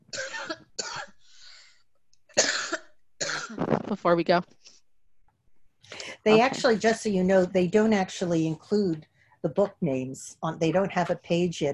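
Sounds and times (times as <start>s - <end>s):
person coughing: 0.1s - 1.2s, 2.4s - 3.7s
speech: 3.9s - 4.6s, 6.2s - 11.7s.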